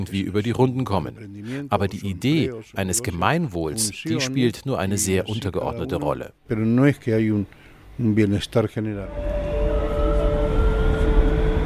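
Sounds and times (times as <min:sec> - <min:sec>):
speech: 0:00.0 - 0:09.8
subway train rumble: 0:09.2 - 0:11.6.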